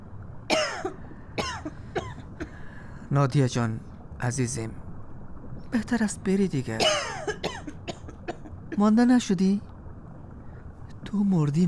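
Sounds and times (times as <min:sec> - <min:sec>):
harsh coughs: 0:00.5 - 0:02.6, 0:06.8 - 0:08.5
speech: 0:03.1 - 0:04.8, 0:05.7 - 0:07.1, 0:08.8 - 0:09.7, 0:11.1 - 0:11.6.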